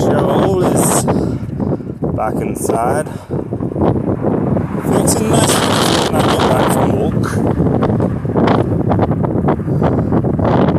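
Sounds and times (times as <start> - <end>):
loud rumbling wind buffeting the microphone in windy weather: 0.0 - 10.7
speech: 2.2 - 3.4.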